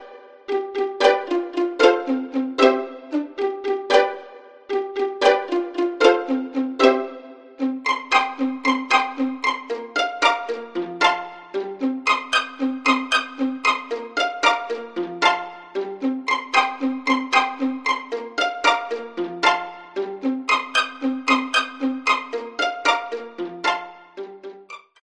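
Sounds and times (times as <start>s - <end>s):
violin pizzicato: 0.0s - 25.0s.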